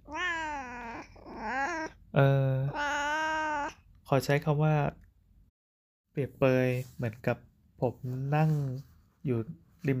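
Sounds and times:
cat meowing: 0.0 - 2.0, 2.6 - 3.8
speech: 2.2 - 2.5, 4.1 - 5.0, 6.2 - 9.9.

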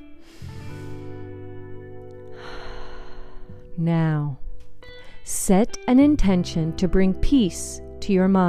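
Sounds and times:
slow deep breath drawn in through the airway: 0.0 - 1.6, 2.3 - 3.7
steady calm low musical drone: 0.0 - 4.4
speech: 3.8 - 4.4, 5.3 - 8.4.

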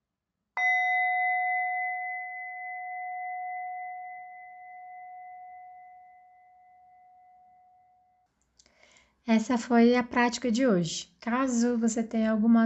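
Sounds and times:
meditation bell ringing: 0.6 - 8.2
speech: 9.3 - 12.6.

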